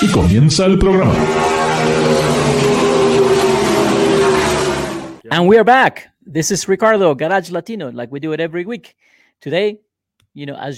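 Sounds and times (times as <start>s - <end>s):
speech: 0.0s - 2.5s, 5.3s - 9.8s, 10.4s - 10.7s
car engine in first gear revving and accelerating: 0.0s - 5.2s.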